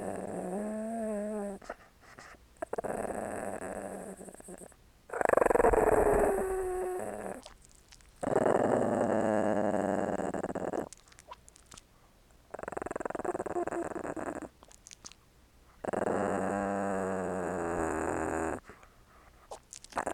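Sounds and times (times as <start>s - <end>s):
small dog growling: 0.0s - 1.7s, 2.6s - 7.5s, 8.2s - 11.0s, 12.5s - 14.6s, 15.8s - 18.8s, 19.8s - 20.1s
small dog licking: 10.8s - 11.9s, 19.5s - 20.0s.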